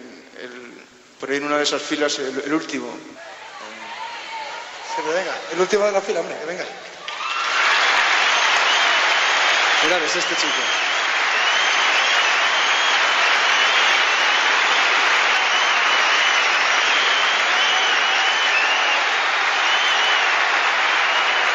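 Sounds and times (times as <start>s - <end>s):
speech: 1.2s - 3.3s, 5.0s - 6.9s, 9.8s - 10.9s
large audience applause: 6.6s - 21.5s.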